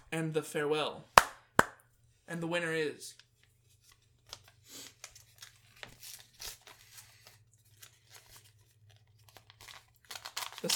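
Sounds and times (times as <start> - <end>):
speech: 0.1 - 1.1, 2.3 - 3.3
envelope paper tearing and crinkling at an awards ceremony: 4.3 - 10.7.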